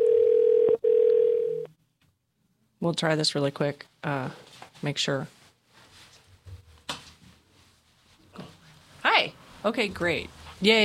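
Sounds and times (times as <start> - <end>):
telephone dial tone while placing a call: 0.0 - 1.7
speech: 2.8 - 5.4, 9.6 - 10.8.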